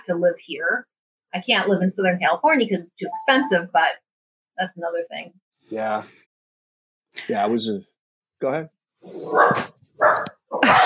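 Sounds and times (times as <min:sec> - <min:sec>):
speech: 0:00.1 - 0:04.0, 0:04.6 - 0:06.2, 0:07.2 - 0:10.8
dog barking: 0:09.2 - 0:10.6.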